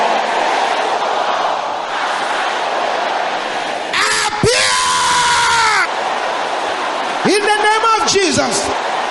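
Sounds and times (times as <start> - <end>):
large audience shouting a prayer: 0.0 - 9.0
one strong voice yelling above the crowd: 4.0 - 5.9.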